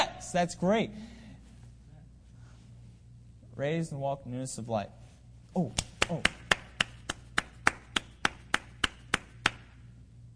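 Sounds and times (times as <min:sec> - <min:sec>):
faint low hum: 0:00.0 - 0:10.3
speech: 0:00.3 - 0:01.1, 0:03.6 - 0:06.4
hand claps after a baptism: 0:05.7 - 0:09.9.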